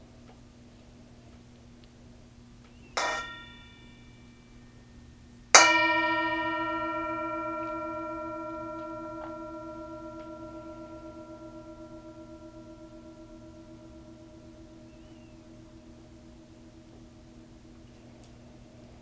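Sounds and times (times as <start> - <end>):
Tibetan singing bowl mindfulness bell struck and ringing: 3.0 - 4.7, 5.6 - 19.0.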